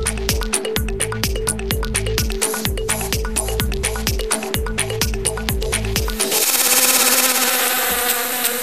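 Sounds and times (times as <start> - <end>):
quick rhythmic musical beat: 0.0 - 8.2
buzzing bee sound effect: 0.0 - 8.6.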